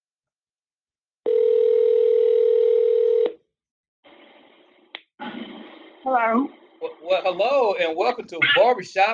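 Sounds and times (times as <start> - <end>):
telephone ringback tone on an outgoing call: 1.3 - 3.4
speech: 6.1 - 9.1.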